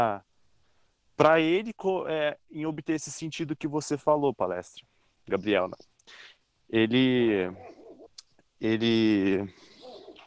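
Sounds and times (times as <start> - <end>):
speech: 0.0 - 0.3, 1.2 - 7.7, 8.6 - 9.6
dog crying: 9.8 - 10.2.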